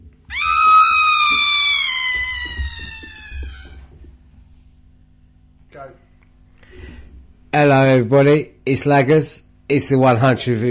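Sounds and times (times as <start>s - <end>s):
cat screeching: 0.3s - 4.0s
speech: 7.6s - 10.6s.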